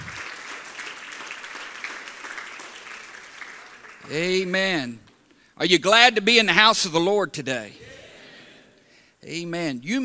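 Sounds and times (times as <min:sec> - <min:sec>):
church audience applause in praise: 0:00.0 - 0:04.5
speech: 0:04.1 - 0:07.8, 0:09.2 - 0:10.0.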